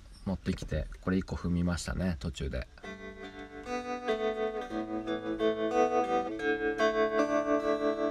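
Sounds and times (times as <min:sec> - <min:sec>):
speech: 0:00.3 - 0:03.0
electric guitar playing sustained chords through a tremolo effect pedal: 0:02.8 - 0:08.0.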